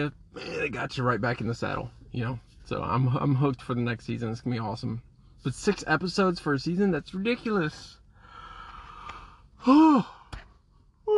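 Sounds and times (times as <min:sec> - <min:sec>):
speech: 0:00.0 - 0:08.0, 0:09.6 - 0:10.2
faint breathy sounds: 0:08.1 - 0:10.4
drawn-out human yawn: 0:09.6 - 0:10.3.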